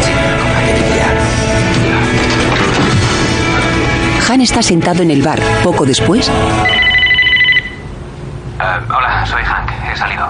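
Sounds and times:
low hum: 0.2s - 10.2s
speech: 4.4s - 7.0s
telephone ringing with an electronic trill: 6.6s - 8.0s.

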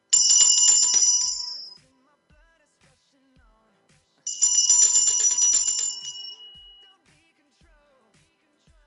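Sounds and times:
Japanese bell ringing: 0.0s - 1.8s, 4.3s - 6.9s.

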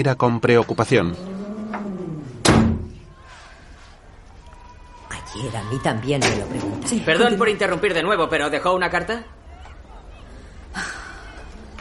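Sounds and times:
speech: 0.0s - 1.4s, 5.4s - 9.4s
door slamming shut: 1.6s - 3.1s.

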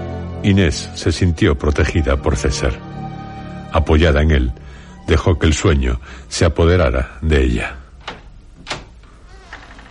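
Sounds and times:
speech: 0.4s - 2.9s, 3.7s - 7.8s
heavy dungeon door creaking open: 8.0s - 9.8s.

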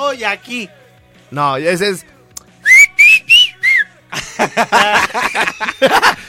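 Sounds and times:
speech: 0.0s - 2.1s, 4.4s - 6.2s
person whistling a short four-note signal tune: 2.6s - 4.0s
snickering laughter: 4.1s - 6.2s.

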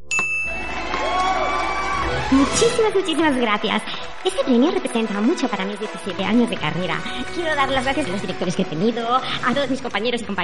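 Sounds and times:
small hand bell chime: 0.1s - 1.4s
crowd murmur and cheering: 0.5s - 10.2s
speech: 2.3s - 10.4s.

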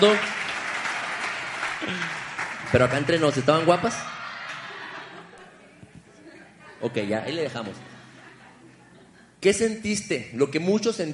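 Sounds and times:
speech: 0.0s - 0.3s, 1.8s - 4.1s, 6.8s - 7.9s, 9.4s - 11.1s
crowd applauding: 0.0s - 5.3s
laughter: 3.6s - 9.4s.

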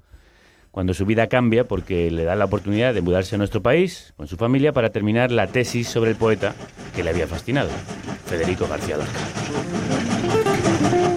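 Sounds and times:
speech: 0.7s - 10.4s
tram rumbling along rails: 5.0s - 11.1s
faint metallic tram wheel squeals: 5.2s - 11.1s.

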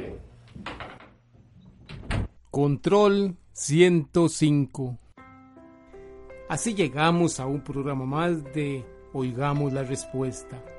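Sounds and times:
door pushed shut with heavy thud: 1.8s - 2.4s
speech: 2.5s - 5.0s, 6.5s - 10.7s.

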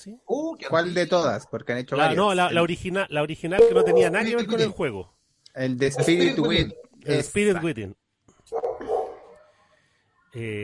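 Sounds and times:
speech: 0.0s - 8.6s, 10.3s - 10.6s
dog barking: 3.6s - 4.2s, 5.9s - 6.5s, 8.5s - 9.5s.

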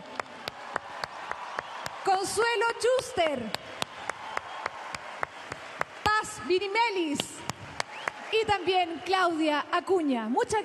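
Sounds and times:
audience applauding singers at a tribute concert: 0.0s - 6.5s, 7.3s - 8.7s
speech: 2.1s - 3.7s, 6.5s - 7.3s, 8.3s - 10.6s.

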